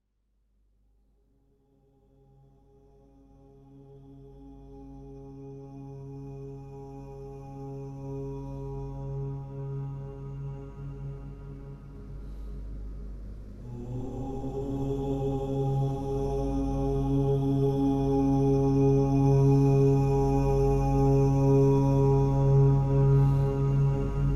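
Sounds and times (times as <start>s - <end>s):
mantra chanting: 3.4s - 12.0s, 13.6s - 24.3s
binaural white noise: 10.9s - 17.0s.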